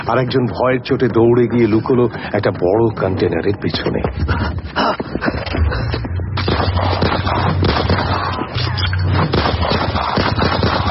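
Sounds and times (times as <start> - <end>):
speech: 0.1 - 5.3
gunfire barrage from two shooters: 6.4 - 8.5, 9.1 - 10.9.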